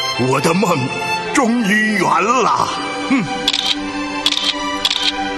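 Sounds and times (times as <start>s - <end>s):
speech: 0.2s - 3.8s
camera shutter clicks beside China's first standard EMU high-speed train: 3.5s - 5.2s.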